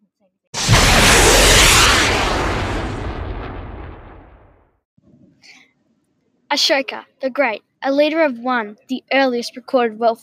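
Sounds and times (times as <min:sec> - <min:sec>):
rocket launch blast-off roar sound effect: 0:00.6 - 0:04.6
speech: 0:06.5 - 0:10.2.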